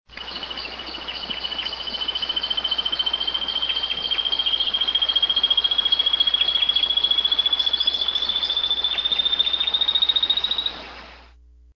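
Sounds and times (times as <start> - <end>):
Conopophaga melanops black-cheeked gnateater calling: 0.1 - 11.3.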